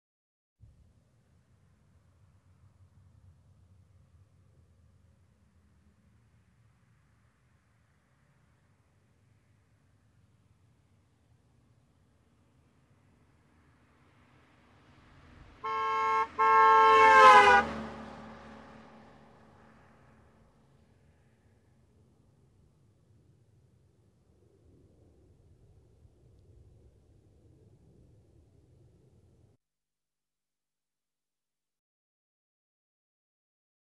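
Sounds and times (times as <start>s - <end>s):
car driving by: 13.4s - 21.6s
car horn honking: 15.6s - 19.3s.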